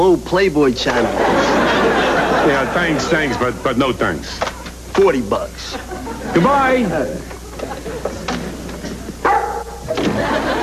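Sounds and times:
speech: 0.0s - 7.7s
steady low hum: 0.0s - 10.6s
laughter: 0.8s - 3.8s, 5.6s - 9.2s, 9.9s - 10.6s
dog barking: 9.2s - 9.8s.

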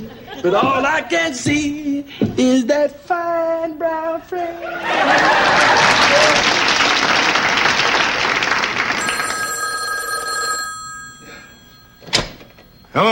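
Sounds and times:
laughter: 0.0s - 1.0s, 4.5s - 7.4s
speech: 0.4s - 6.6s, 13.0s - 13.1s
loud applause: 4.9s - 9.6s
telephone bell ringing with a bright metallic trill: 9.0s - 13.1s.

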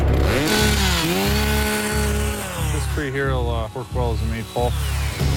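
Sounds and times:
chainsaw cutting a tree: 0.1s - 3.0s
speech: 3.9s - 5.3s.

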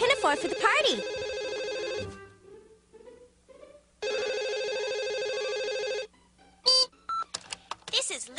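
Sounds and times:
speech: 0.0s - 1.2s
telephone ringing: 0.0s - 2.2s, 4.0s - 6.1s.

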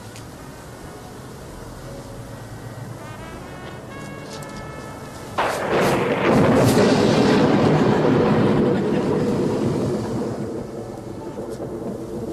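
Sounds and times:
thunder crack and rumble from a lightning strike: 5.4s - 12.3s.

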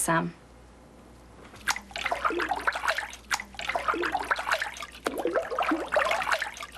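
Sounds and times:
speech: 0.0s - 0.4s
paper pulp poured into a vat of water: 1.6s - 6.7s.

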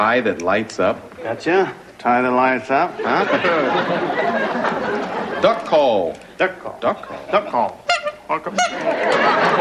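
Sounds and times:
speech: 0.0s - 9.5s
laughter: 2.9s - 6.0s, 6.8s - 7.7s, 8.5s - 9.5s
duck call giving loud nasal quacking honks: 7.9s - 9.0s.

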